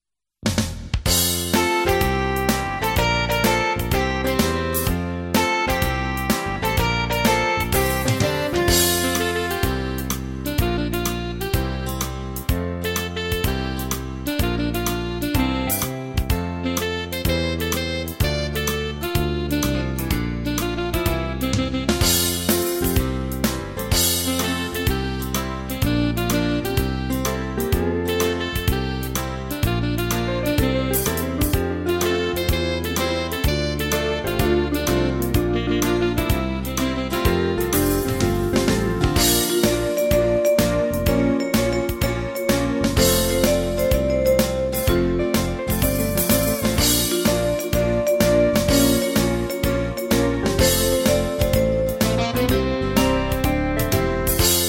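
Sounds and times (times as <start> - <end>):
music: 0.4 - 54.6.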